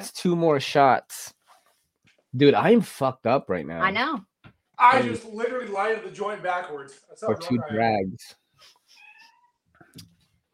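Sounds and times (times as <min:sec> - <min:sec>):
speech: 0:00.0 - 0:01.4, 0:02.3 - 0:08.8
cat meowing: 0:09.0 - 0:09.6.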